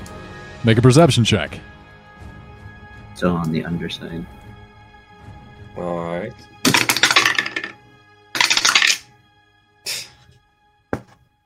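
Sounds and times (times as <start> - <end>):
speech: 0.6 - 1.7, 3.2 - 4.4, 5.8 - 6.6
dice rattling and clattering across a hard table: 6.6 - 7.8, 8.4 - 9.0.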